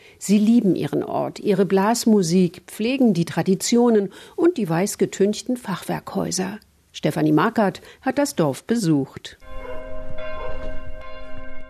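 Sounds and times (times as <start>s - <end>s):
speech: 0.2s - 9.6s
church bells ringing: 9.4s - 11.6s.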